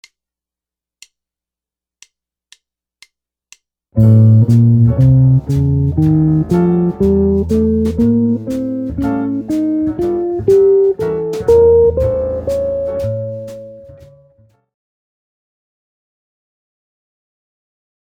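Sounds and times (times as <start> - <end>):
guitar playing melodic minor modes: 4.0 - 14.4.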